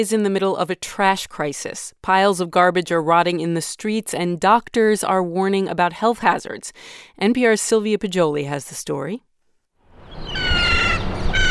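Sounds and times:
speech: 0.0 - 9.3
dense wash of noise: 0.0 - 11.4
flock of seagulls calling over garbage-strewn streets in Rome: 10.0 - 11.4.

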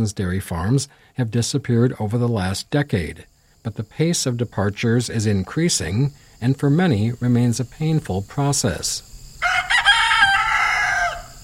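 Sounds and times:
speech: 0.0 - 9.1
rooster crowing on a dairy farm outside Monroe, Wisconsin: 9.4 - 11.4.

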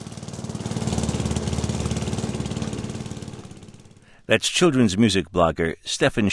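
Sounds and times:
lawn mower engine running: 0.0 - 4.2
speech: 4.3 - 6.3.

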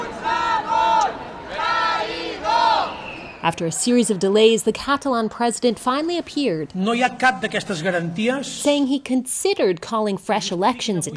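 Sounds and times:
demonstrators in the streets of Barcelona cheering and shouting: 0.0 - 8.6
speech: 3.4 - 11.1.

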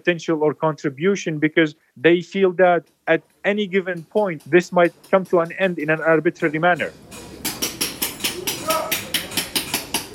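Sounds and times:
speech: 0.0 - 7.3
coppersmiths hammering copper in a workshop: 2.8 - 10.1.

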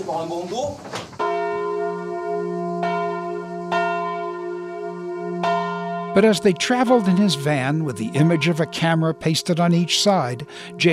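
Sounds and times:
speech: 0.0 - 1.2, 6.2 - 10.9
large church bell tolling with humming resonance: 1.2 - 10.9.

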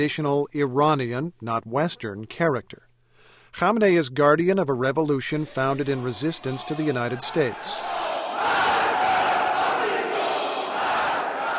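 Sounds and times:
speech: 0.0 - 2.9, 3.6 - 8.0
crowd chanting in unison at Friday prayers in Tehran: 5.8 - 11.5.

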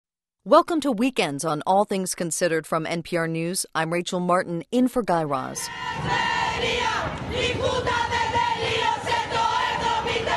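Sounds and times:
speech: 0.4 - 8.3
crowd of protesters shouting in the streets of Athens, Greece: 5.7 - 10.3.

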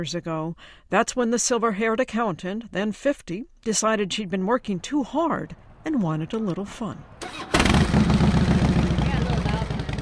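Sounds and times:
speech: 0.0 - 8.5
Harley motorcycle engine rumbling: 5.6 - 10.0.

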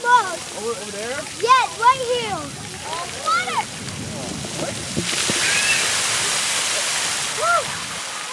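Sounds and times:
water splashing from splash pad fountains: 0.0 - 8.3
speech: 0.6 - 3.7
children's voices and shrieks at a splash pad: 1.4 - 3.7, 5.4 - 6.1, 7.4 - 8.3.

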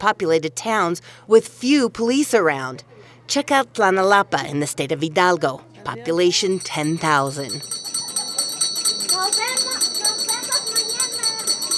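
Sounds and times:
speech: 0.0 - 7.8
children's voices chattering and calling outside an elementary school: 5.6 - 11.7
small handbell on an ice cream vendor's cart jingling outside an elementary school: 6.3 - 11.7.

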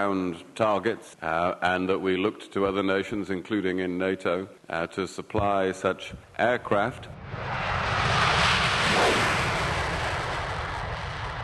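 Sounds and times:
speech: 0.0 - 8.1
French Rafale fighter jets taking off from an air base in Corsica: 7.1 - 11.4.

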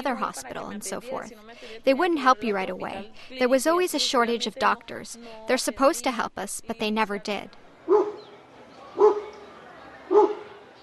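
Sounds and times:
speech: 0.0 - 8.0
wild dogs barking outdoors: 7.8 - 10.8.

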